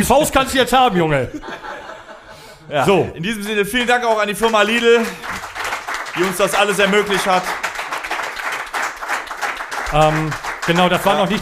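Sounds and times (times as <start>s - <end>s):
speech: 0.0s - 1.9s, 2.7s - 5.4s, 6.2s - 7.6s, 9.9s - 11.4s
laughter: 0.9s - 3.2s
audience applause: 4.1s - 11.4s.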